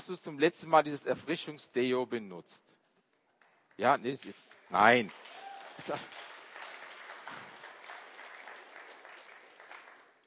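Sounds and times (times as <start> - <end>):
speech: 0.0 - 2.8, 3.8 - 6.3
crowd clapping: 3.1 - 10.2.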